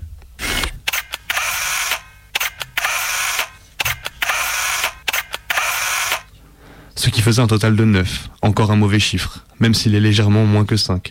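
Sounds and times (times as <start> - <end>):
camera shutter clicking as photos are taken: 0.4 - 6.3
speech: 7.2 - 11.1.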